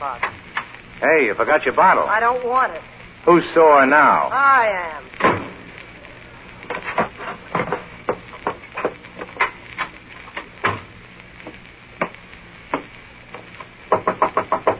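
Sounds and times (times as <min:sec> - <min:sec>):
speech: 0:00.0 - 0:05.1
hissy crackling background: 0:00.0 - 0:14.7
knocking on a door: 0:13.9 - 0:14.7.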